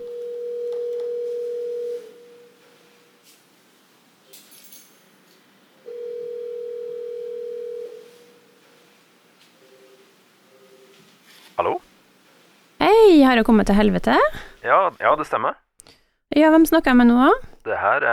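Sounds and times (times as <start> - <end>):
telephone dial tone before a call: 0.0 - 2.6, 5.8 - 8.5
speech: 11.6 - 11.8, 13.1 - 15.6, 16.4 - 18.1.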